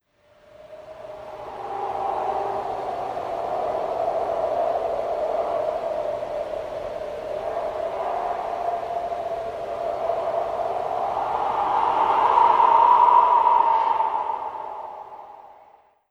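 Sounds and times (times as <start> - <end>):
creepy wind: 0.3 - 16.0.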